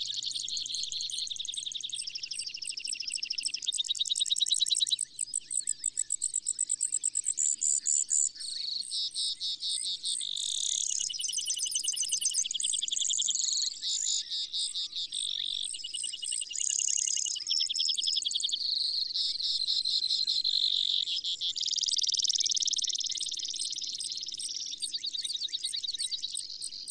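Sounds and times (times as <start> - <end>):
Brewer's sparrow high trilling song: 0.0 - 26.8.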